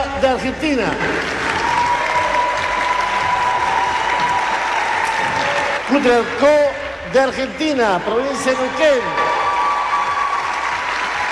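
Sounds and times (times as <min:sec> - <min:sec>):
speech: 0:00.2 - 0:01.2, 0:05.9 - 0:09.2
audience applause for final participants at an event: 0:00.7 - 0:07.0, 0:08.5 - 0:11.2.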